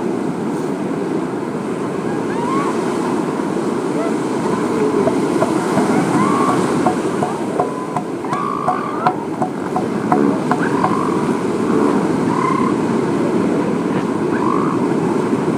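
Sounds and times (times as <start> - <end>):
surf roar at an elephant seal beach: 0.0 - 15.5
wind: 0.0 - 15.5
short faint higher-pitched calls: 1.9 - 12.9, 13.9 - 15.3.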